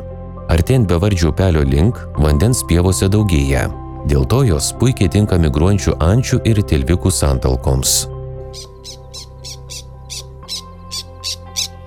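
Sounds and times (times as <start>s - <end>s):
speech: 0.5s - 8.7s
black terns calling over wet meadows by a stream in Lithuania: 8.4s - 11.8s.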